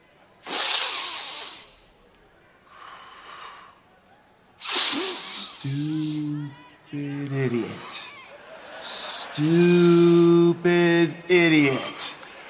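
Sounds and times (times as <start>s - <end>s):
loud breathing exercise inhales and exhales: 0.4s - 2.0s, 2.6s - 4.0s, 4.6s - 6.5s
laughter: 5.3s - 12.4s
speech: 5.6s - 6.0s, 9.4s - 9.7s.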